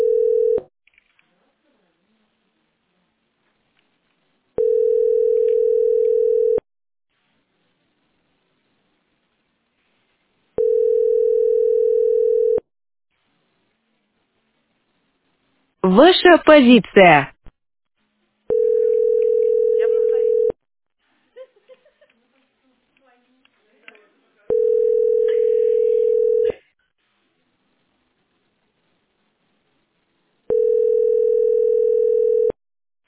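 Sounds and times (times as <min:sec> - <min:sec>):
shared-channel telephone line tone, a loud steady hum: 0:00.0 - 0:00.6, 0:04.6 - 0:06.6, 0:10.6 - 0:12.6, 0:18.5 - 0:20.6, 0:24.5 - 0:26.6, 0:30.5 - 0:32.6
speech: 0:16.0 - 0:17.3.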